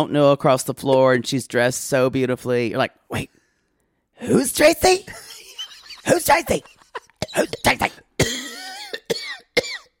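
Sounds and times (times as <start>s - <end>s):
speech: 0.0s - 3.4s, 4.2s - 5.3s, 6.0s - 6.7s, 7.3s - 8.0s
laughter: 5.1s - 8.0s
person coughing hoarsely: 7.0s - 9.9s.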